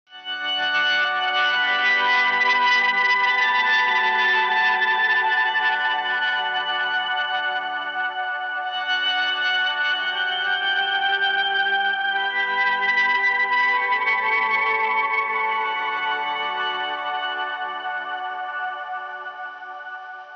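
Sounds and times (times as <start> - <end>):
ethereal guitar: 0.1 - 20.3.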